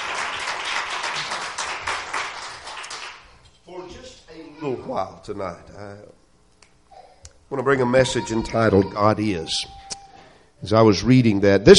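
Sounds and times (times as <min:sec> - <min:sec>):
audience clapping at a worship service: 0:00.0 - 0:03.4
speech: 0:04.6 - 0:06.2, 0:07.5 - 0:09.8, 0:10.6 - 0:11.7.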